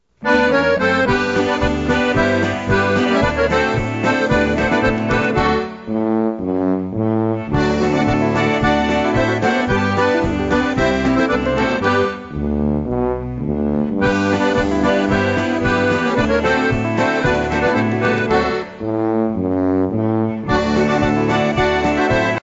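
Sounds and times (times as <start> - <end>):
tuba playing a polka: 0.2 - 22.4.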